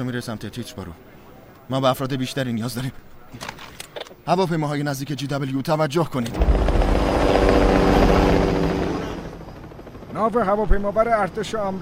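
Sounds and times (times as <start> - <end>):
speech: 0.0 - 6.7, 10.2 - 11.8
helicopter flying with throbbing rotor drone: 6.3 - 11.8.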